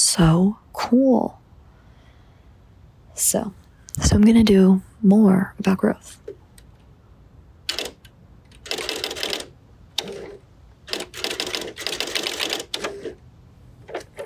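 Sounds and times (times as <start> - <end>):
speech: 0.1 - 1.4, 3.2 - 6.3
typewriter typing: 7.7 - 13.2, 13.8 - 14.2.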